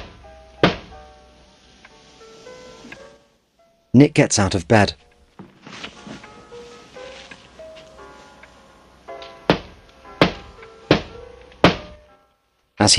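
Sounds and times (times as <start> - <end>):
soft melodic music: 0.0 - 12.9
knocking on a glass-paned door: 0.6 - 1.0
speech: 3.9 - 5.1.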